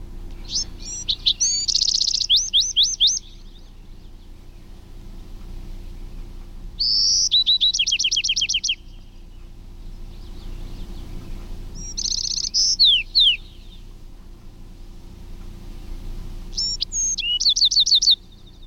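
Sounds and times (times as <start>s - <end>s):
adult wren singing: 0.0s - 18.6s
steady low hum: 0.0s - 18.6s.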